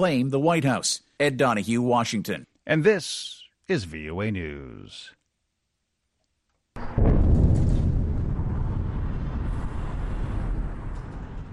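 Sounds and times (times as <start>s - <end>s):
speech: 0.0s - 5.2s
deep heavy rumble after explosion: 6.8s - 11.5s
loud explosion from fighting in Gaza: 6.8s - 11.5s.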